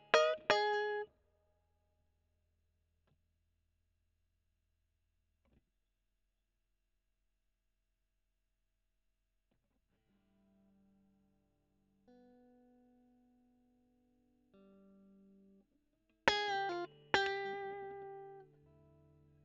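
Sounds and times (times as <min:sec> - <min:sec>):
overdriven electric guitar recorded with a Gefell microphone: 0:00.0 - 0:01.0, 0:16.3 - 0:19.4.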